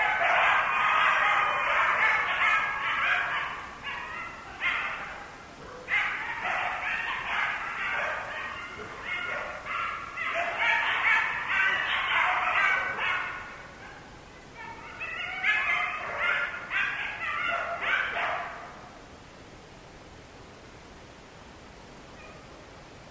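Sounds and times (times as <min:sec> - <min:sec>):
several coyotes giving excited high yips and yelps: 0:00.0 - 0:19.0, 0:22.2 - 0:22.6.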